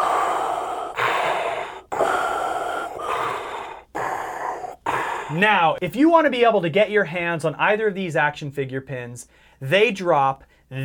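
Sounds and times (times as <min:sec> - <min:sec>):
voice imitating heavy mechanical respirator breathing: 0:00.0 - 0:05.8
speech: 0:05.3 - 0:10.8.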